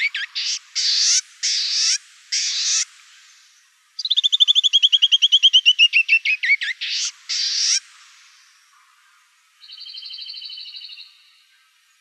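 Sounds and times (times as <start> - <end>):
canyon wren song with whistled and buzzy notes in Arizona: 0.0 - 2.9, 4.0 - 7.8, 9.6 - 11.2.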